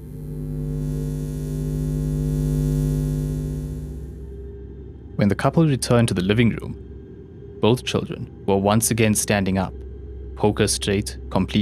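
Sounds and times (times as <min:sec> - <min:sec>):
faint higher buzz: 0:00.0 - 0:04.6
low electrical hum resonating through a house: 0:00.0 - 0:11.6
speech: 0:05.2 - 0:06.9, 0:07.6 - 0:09.8, 0:10.4 - 0:11.6.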